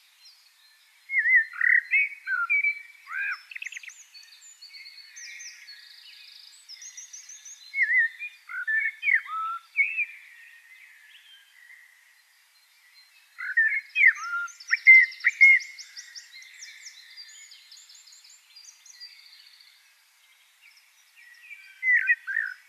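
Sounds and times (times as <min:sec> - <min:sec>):
Eurasian blackbird Turdus merula singing: 0:00.0 - 0:22.6.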